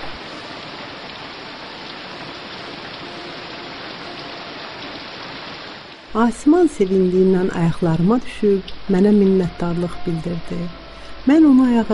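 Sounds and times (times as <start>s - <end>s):
rain falling over a burning forest: 0.0s - 11.9s
speech: 6.2s - 11.9s.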